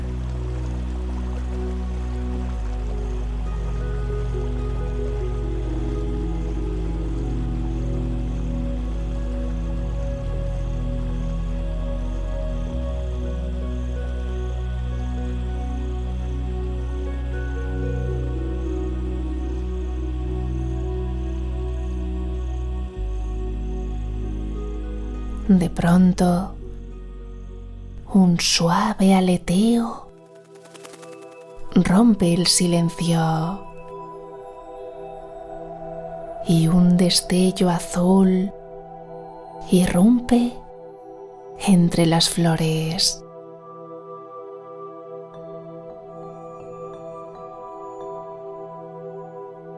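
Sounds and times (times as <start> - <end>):
brook water running and trickling at night: 0.0 - 11.2
low sustained hum: 0.0 - 43.2
speech: 25.5 - 26.6, 28.2 - 30.0, 31.8 - 33.6, 36.5 - 38.6, 39.7 - 40.6, 41.6 - 43.2.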